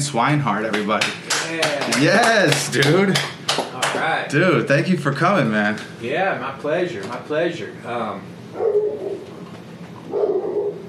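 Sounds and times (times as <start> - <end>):
speech: 0.0 - 9.3, 10.1 - 10.4
female dog barking and whimpering: 8.5 - 9.2, 10.1 - 10.8.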